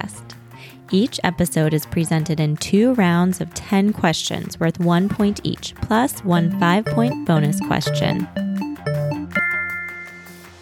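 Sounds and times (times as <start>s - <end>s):
speech: 0.9s - 8.5s
food trivia quiz timer chime of bright electronic notes: 6.4s - 10.5s.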